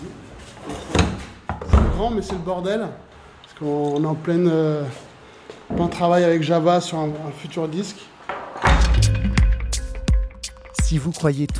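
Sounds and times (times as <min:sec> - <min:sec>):
heavy cold room door thudding shut: 0:01.0 - 0:02.4, 0:08.6 - 0:09.1
speech: 0:02.0 - 0:05.0, 0:05.7 - 0:08.1, 0:10.9 - 0:11.5.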